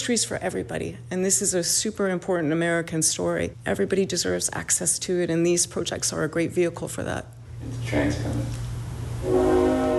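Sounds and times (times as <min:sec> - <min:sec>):
speech: 0:00.0 - 0:08.6
passing freight train whistle from railroad tracks behind a house: 0:09.1 - 0:09.9.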